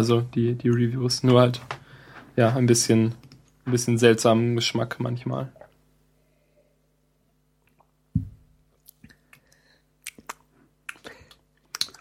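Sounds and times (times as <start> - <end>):
speech: 0.0 - 1.8, 2.4 - 5.6
low thump: 8.1 - 8.5
wet lip smacking while drinking sparkling water: 8.8 - 12.0.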